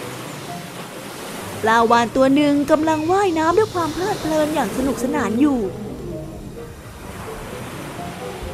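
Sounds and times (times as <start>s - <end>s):
ocean waves washing onto the shore: 0.0s - 8.5s
speech: 1.6s - 5.9s.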